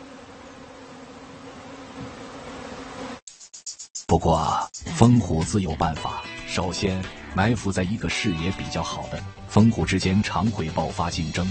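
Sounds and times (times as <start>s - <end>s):
honeybees buzzing in fast flight: 0.0s - 3.2s
speech: 4.1s - 11.4s.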